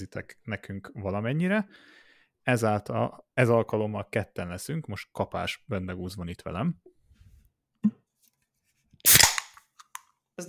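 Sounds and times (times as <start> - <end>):
speech: 0.0 - 6.9
can of Soproni radler beer being cracked open: 9.0 - 10.0.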